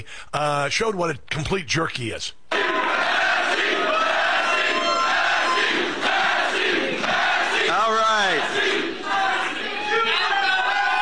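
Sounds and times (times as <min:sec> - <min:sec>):
speech: 0:00.0 - 0:02.4
large crowd chanting a name at a concession speech: 0:02.5 - 0:10.9.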